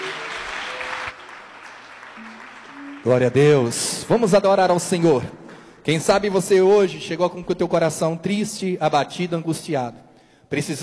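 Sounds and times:
dense applause at a church worship gathering: 0:00.0 - 0:05.7
speech: 0:03.0 - 0:10.8.

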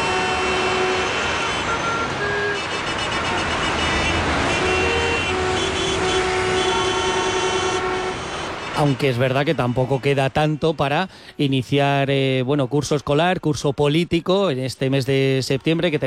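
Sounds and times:
car horns in city street traffic in Toledo: 0:00.0 - 0:10.9
dense rumble of engines and tires in city street traffic in Toledo: 0:00.0 - 0:16.0
speech: 0:08.8 - 0:16.0.

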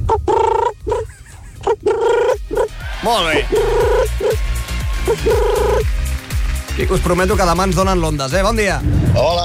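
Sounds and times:
person imitating pigeon cooing: 0:00.1 - 0:02.7, 0:03.4 - 0:04.4, 0:05.1 - 0:05.8
speech: 0:03.0 - 0:04.4, 0:05.1 - 0:06.0, 0:06.8 - 0:09.4.

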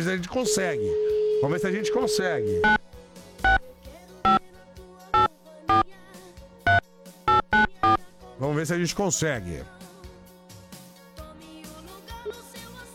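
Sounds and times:
speech: 0:00.0 - 0:02.8, 0:08.6 - 0:09.8
telephone keypad dialing beeps: 0:00.4 - 0:02.8, 0:03.4 - 0:03.6, 0:05.2 - 0:05.9, 0:06.7 - 0:08.0
warbling electronic telephone ringing tone: 0:00.4 - 0:02.8.

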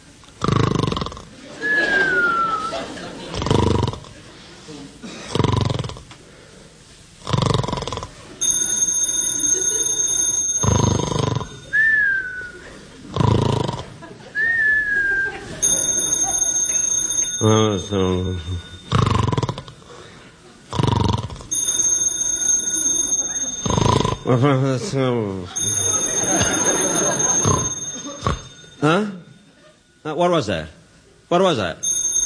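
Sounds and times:
loud rhythmic snoring with whistling exhales: 0:00.4 - 0:01.3, 0:03.3 - 0:04.1, 0:05.3 - 0:06.1, 0:07.2 - 0:08.2, 0:10.6 - 0:11.6, 0:13.1 - 0:14.0, 0:18.9 - 0:19.9, 0:20.7 - 0:21.5, 0:23.6 - 0:24.3, 0:27.2 - 0:28.5
laughter: 0:01.4 - 0:04.5, 0:13.8 - 0:16.4, 0:24.3 - 0:28.5
telephone ringing in a house: 0:08.4 - 0:11.8, 0:15.6 - 0:19.4, 0:21.5 - 0:24.5, 0:25.5 - 0:30.0, 0:31.8 - 0:32.2
speech: 0:17.5 - 0:18.6, 0:24.3 - 0:26.4, 0:30.2 - 0:31.8.

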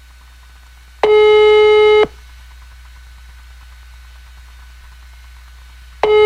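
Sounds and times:
telephone line ringback tone during a call: 0:01.0 - 0:02.1, 0:06.0 - 0:06.2.

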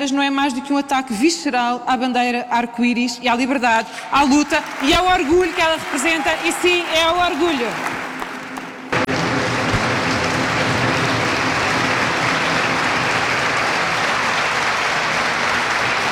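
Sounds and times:
speech: 0:00.0 - 0:07.9
large crowd applauding after political speech: 0:04.1 - 0:16.1.

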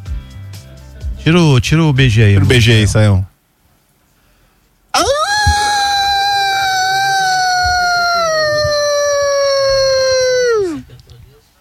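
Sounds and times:
speech: 0:01.2 - 0:03.3
person imitating a wolf howl: 0:05.0 - 0:10.8.

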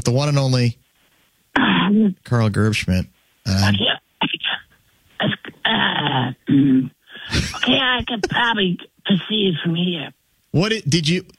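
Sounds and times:
speech: 0:00.1 - 0:00.8, 0:01.9 - 0:04.4, 0:05.2 - 0:11.3
person clearing throat to bring up phlegm: 0:05.2 - 0:08.4.

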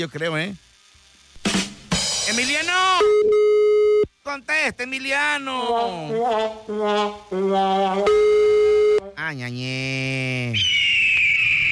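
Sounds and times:
speech: 0:00.0 - 0:00.7, 0:02.3 - 0:03.5, 0:04.2 - 0:10.8
eagle screech sound effect: 0:10.5 - 0:11.7.

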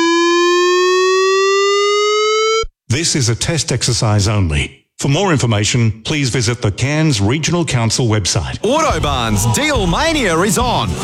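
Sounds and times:
emergency warning siren wailing: 0:00.0 - 0:02.7
speech: 0:03.1 - 0:11.0.

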